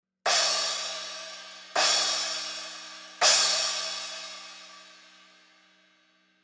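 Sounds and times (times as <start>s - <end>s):
trash crash cymbal hits: 0.3s - 5.0s.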